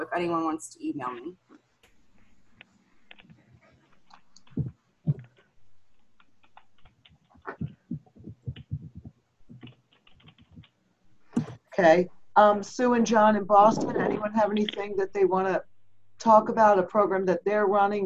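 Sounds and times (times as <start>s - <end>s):
speech: 0.2s - 1.4s, 11.8s - 18.0s
typing on a computer keyboard: 4.0s - 10.8s.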